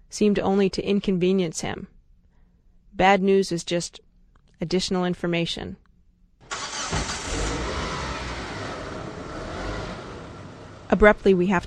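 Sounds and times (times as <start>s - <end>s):
speech: 0.1s - 1.9s, 2.9s - 5.8s, 10.9s - 11.6s
car engine roaring through city streets: 6.4s - 11.2s
road rumble: 6.4s - 11.6s.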